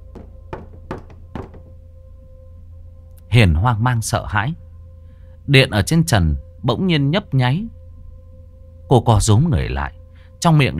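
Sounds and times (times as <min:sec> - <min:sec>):
low steady hum: 0:00.0 - 0:10.4
clattering knocks on a wall: 0:00.1 - 0:01.8
speech: 0:03.3 - 0:04.6, 0:05.5 - 0:07.8, 0:08.9 - 0:10.7.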